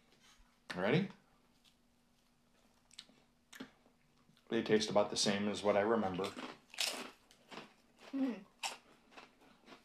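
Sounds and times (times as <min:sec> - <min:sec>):
speech: 0:00.8 - 0:01.2, 0:04.5 - 0:06.6, 0:08.1 - 0:08.5
biting and crunching thick all-dressed potato chips: 0:06.1 - 0:09.8.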